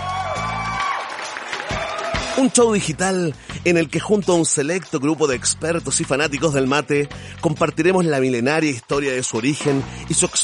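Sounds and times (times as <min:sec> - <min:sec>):
crowd clapping: 0:00.0 - 0:02.8
speech: 0:02.4 - 0:10.4.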